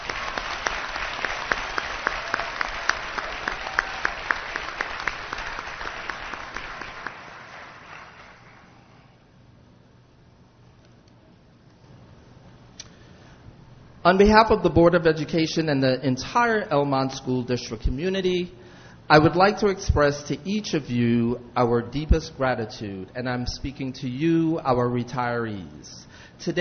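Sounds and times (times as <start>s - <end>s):
audience applause in a room: 0.0s - 8.9s
speech: 14.1s - 26.5s.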